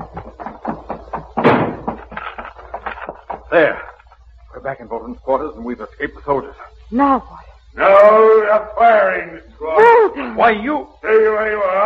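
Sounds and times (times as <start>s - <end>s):
door slammed shut and barred: 1.4s - 2.1s
speech: 3.5s - 3.9s, 4.6s - 11.8s.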